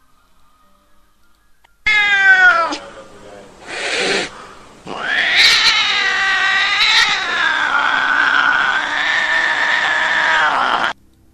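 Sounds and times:
cats yowling in a forest: 0:01.9 - 0:03.0, 0:03.6 - 0:11.0.

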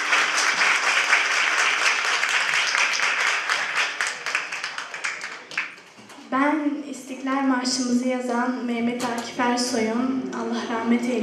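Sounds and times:
audience applause at a community program in Munich: 0:00.0 - 0:05.8
speech: 0:07.2 - 0:11.2.

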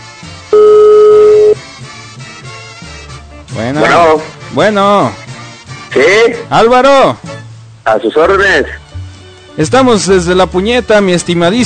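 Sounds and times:
telephone ringing tone while dialing a call: 0:00.5 - 0:01.6
speech: 0:03.6 - 0:05.2, 0:06.0 - 0:07.3, 0:07.9 - 0:08.8, 0:09.6 - 0:11.6.

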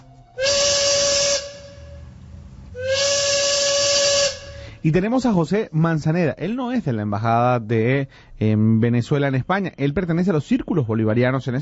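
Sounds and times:
train steam whistle blasts: 0:00.0 - 0:04.8
train steam hissing: 0:00.4 - 0:04.9
speech: 0:04.8 - 0:11.6.

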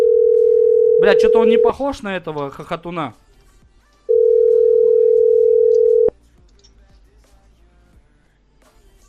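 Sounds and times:
telephone ringback tone while a call is being placed: 0:00.0 - 0:01.7, 0:04.1 - 0:06.1
speech: 0:01.0 - 0:03.2.

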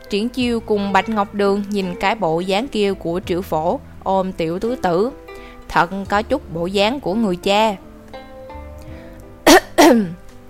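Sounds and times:
speech: 0:00.1 - 0:07.8, 0:09.9 - 0:10.2
dry cough: 0:09.5 - 0:10.2.

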